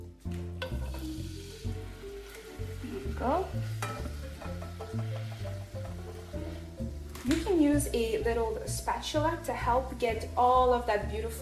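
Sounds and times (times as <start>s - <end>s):
glazed tempeh sizzling in hot oil in a pan: 0.1s - 11.4s
speech: 3.2s - 3.8s, 7.3s - 11.4s.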